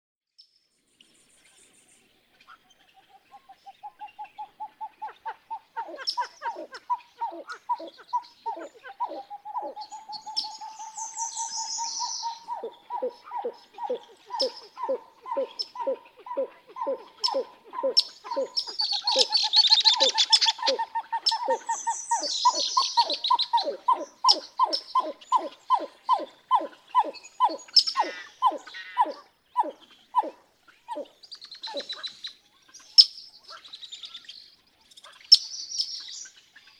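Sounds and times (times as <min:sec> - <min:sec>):
Pied-billed Grebe calling: 0:03.1 - 0:32.2.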